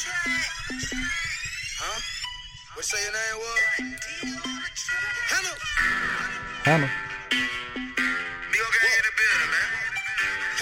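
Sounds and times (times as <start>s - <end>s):
steady low hip hop beat: 0.0s - 1.6s, 3.6s - 4.8s, 6.4s - 8.4s
bright chime-like bell melody of a hip hop song intro: 0.2s - 10.5s
speech: 2.8s - 5.2s, 6.6s - 7.0s.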